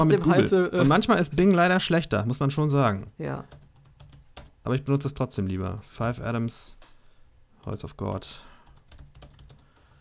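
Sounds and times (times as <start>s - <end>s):
speech: 0.0s - 3.6s, 4.6s - 6.9s, 7.6s - 8.5s
typing on a computer keyboard: 3.5s - 4.6s, 7.6s - 9.9s.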